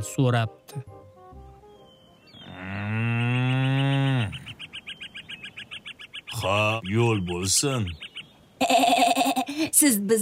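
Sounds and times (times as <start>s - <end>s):
speech: 0.0s - 1.0s, 6.4s - 8.1s, 9.6s - 10.2s
short high bird chirps: 0.7s - 8.8s
ox lowing: 2.4s - 4.6s, 8.6s - 9.6s.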